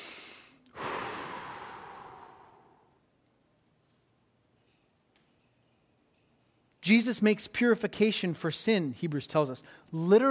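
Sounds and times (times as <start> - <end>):
slow deliberate breath in and out: 0.0 - 3.0
speech: 6.9 - 10.2.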